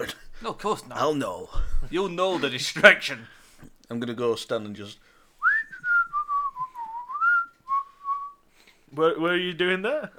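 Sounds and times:
speech: 0:00.0 - 0:05.1, 0:09.0 - 0:10.1
faint noise: 0:00.0 - 0:10.1
person whistling a wavering melody: 0:05.4 - 0:08.4.

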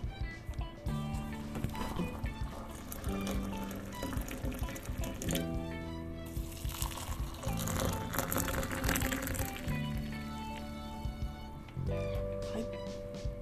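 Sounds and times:
faint tonal music: 0:00.0 - 0:13.4
hot water poured into bancha and habu tea: 0:00.9 - 0:11.2.

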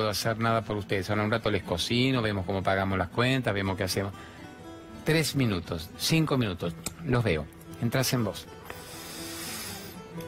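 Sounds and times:
speech: 0:00.0 - 0:04.4, 0:05.0 - 0:08.8
slow deep breathy exhale: 0:08.7 - 0:10.1.

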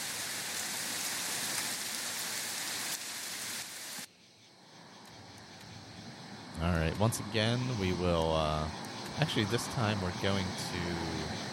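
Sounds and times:
heavy rain falling: 0:00.0 - 0:04.1
speech: 0:06.6 - 0:11.5.

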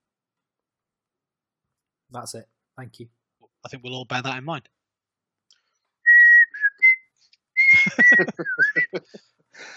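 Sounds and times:
speech: 0:02.1 - 0:04.8, 0:07.9 - 0:09.7
person whistling: 0:06.1 - 0:09.1
laughter: 0:07.6 - 0:09.7.

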